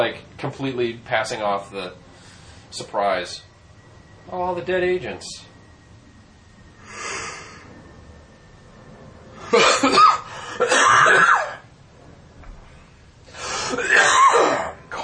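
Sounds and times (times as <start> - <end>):
speech: 0.0 - 2.1, 2.7 - 3.5, 4.2 - 5.5
harsh coughing: 9.4 - 11.7, 13.6 - 14.8.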